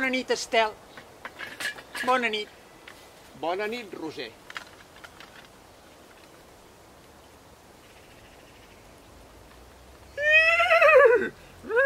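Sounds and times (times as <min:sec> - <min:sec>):
speech: 0:00.1 - 0:02.6, 0:03.4 - 0:04.4
horse neighing: 0:10.2 - 0:11.8.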